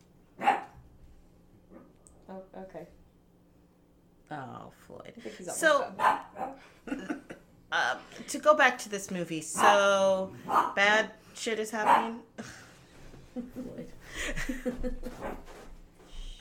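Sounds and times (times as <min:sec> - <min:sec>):
low hum: 0:00.0 - 0:16.4
puppy barking: 0:00.4 - 0:00.8, 0:05.9 - 0:06.6, 0:09.6 - 0:09.8, 0:10.5 - 0:10.8, 0:11.8 - 0:12.2
speech: 0:02.6 - 0:03.0, 0:04.3 - 0:07.1, 0:07.8 - 0:12.6, 0:13.4 - 0:15.4
laughter: 0:06.6 - 0:07.4, 0:13.4 - 0:15.2.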